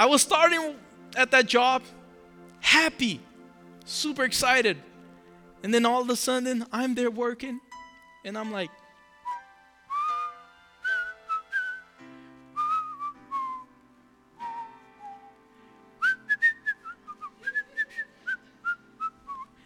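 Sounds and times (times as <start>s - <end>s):
speech: 0.0s - 2.0s, 2.6s - 3.3s, 3.9s - 4.9s, 5.6s - 8.8s
person whistling a cheerful tune: 9.2s - 12.0s, 12.6s - 13.8s, 14.4s - 15.4s, 16.0s - 19.6s.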